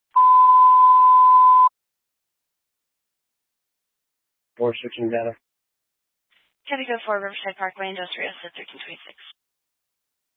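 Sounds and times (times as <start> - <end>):
radio dispatch paging alert tone for a rescue squad: 0.2 - 1.7
speech: 4.6 - 5.5, 6.7 - 9.4.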